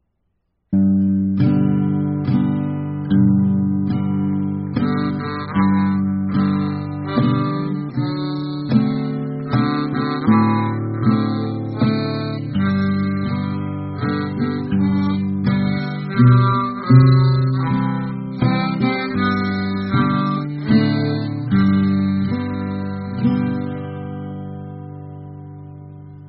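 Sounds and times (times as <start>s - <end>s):
low guitar: 0.8s - 26.2s
Pulmonica harmonica: 3.3s - 25.7s.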